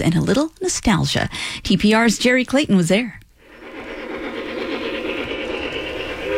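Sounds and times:
speech: 0.0 - 3.2
model train running along its tracks: 3.4 - 6.3.

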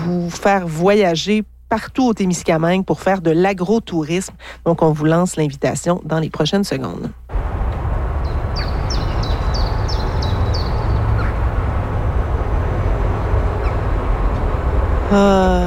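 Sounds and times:
speech: 0.3 - 7.2, 15.1 - 15.3
steady low rumble of traffic and city noise: 7.3 - 15.6
grebe repeating a short rising call: 8.3 - 11.4.

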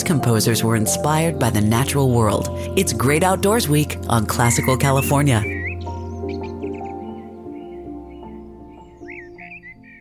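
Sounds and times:
speech: 0.0 - 5.6
sustained mellow orchestral music: 0.0 - 9.9
short high bird chirps: 4.3 - 9.9.

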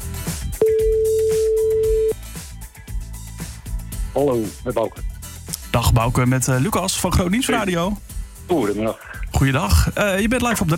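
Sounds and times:
music: 0.0 - 10.7
telephone ringback tone while a radio station calls a listener: 0.6 - 2.2
speech: 4.2 - 5.1, 5.8 - 10.7.

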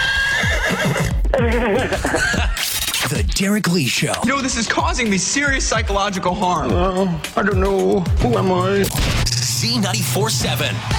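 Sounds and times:
horse neighing with a wavering shaky pitch: 0.0 - 2.1
laughter: 1.3 - 2.8
speech: 1.4 - 10.9.

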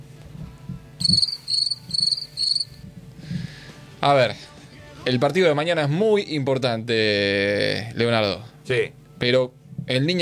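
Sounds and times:
speech: 1.0 - 1.3, 4.0 - 10.2
crisp buzzing cricket chirps: 1.0 - 2.8.

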